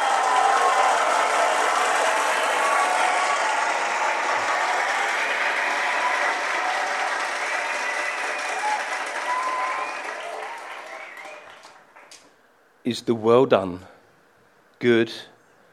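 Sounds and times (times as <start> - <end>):
audience applause at a church sermon: 0.0 - 12.2
speech: 12.9 - 13.9, 14.8 - 15.3.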